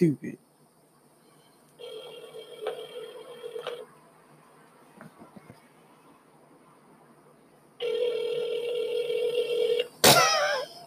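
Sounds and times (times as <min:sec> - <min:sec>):
electronic ringback tones from an outgoing phone call: 0:01.3 - 0:03.8, 0:07.8 - 0:09.9.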